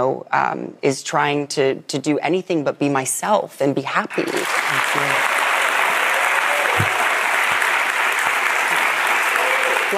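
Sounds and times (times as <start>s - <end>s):
speech: 0.0s - 5.4s
audience applauding: 4.1s - 9.9s.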